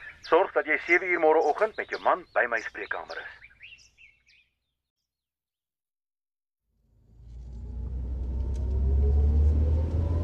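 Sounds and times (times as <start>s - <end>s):
speech: 0.3s - 3.4s
car engine rumbling while driving on a road: 6.9s - 10.2s.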